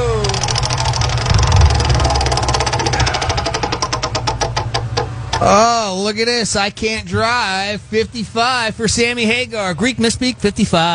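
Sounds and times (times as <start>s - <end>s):
prize wheel spinning with ratcheting clicks: 0.0s - 5.5s
low rumbling hum: 0.0s - 10.8s
speech: 5.4s - 10.9s.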